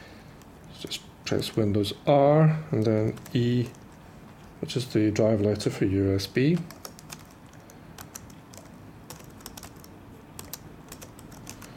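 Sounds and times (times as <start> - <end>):
speech: 0.8 - 3.8, 4.6 - 6.8
typing on a computer keyboard into a screen reader: 2.8 - 4.0, 6.5 - 11.7.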